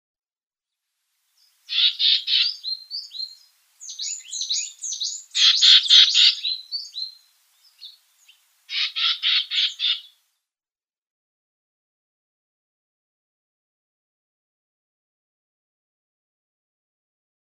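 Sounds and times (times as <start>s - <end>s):
Algerian nuthatch calls: 1.4s - 10.2s.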